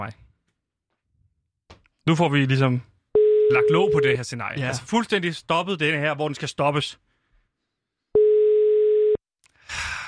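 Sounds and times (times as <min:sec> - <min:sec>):
speech: 0:00.0 - 0:00.2, 0:02.1 - 0:02.9, 0:03.5 - 0:07.0
telephone ringing tone: 0:03.2 - 0:04.2, 0:08.2 - 0:09.2.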